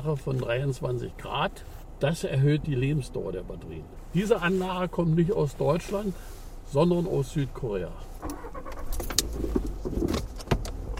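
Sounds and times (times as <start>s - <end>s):
speech: 0.0s - 9.5s
car turning left onto a bumpy dirt field track at an energy facility site: 0.0s - 10.9s
steady low road rumble: 0.0s - 10.9s
car bumping on rough ground: 8.2s - 10.9s
rattles: 8.2s - 10.9s.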